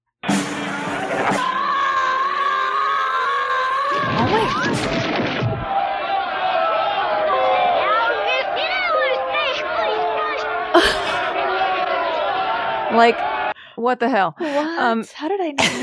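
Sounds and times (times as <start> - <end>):
sharp crash: 0.2 - 2.1, 4.0 - 5.8
dense steady crowd noise: 0.2 - 15.8
garbled voices played backward: 0.6 - 13.4
laughter: 6.1 - 13.2, 15.6 - 15.8
speech: 13.0 - 15.8.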